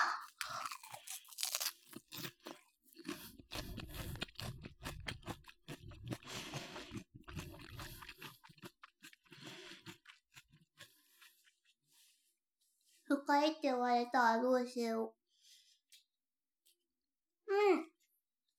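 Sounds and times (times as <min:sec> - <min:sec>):
raw cabbage with salted kelp being chewed: 0:00.0 - 0:12.0
speech: 0:13.2 - 0:15.2.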